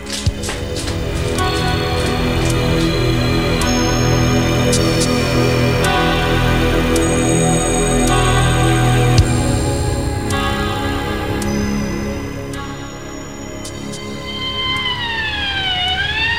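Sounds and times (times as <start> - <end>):
low traffic rumble: 0.0 - 16.3
police car siren: 0.1 - 16.3.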